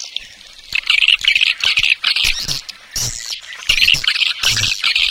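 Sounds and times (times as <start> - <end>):
swiftlet twittering for swiftlet farming in Asia: 0.2 - 5.0.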